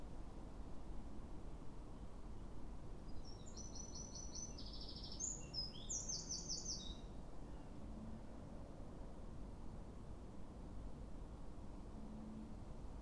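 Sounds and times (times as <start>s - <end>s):
low background noise: 0.0s - 13.0s
Eurasian wren Troglodytes troglodytes song: 3.1s - 7.7s.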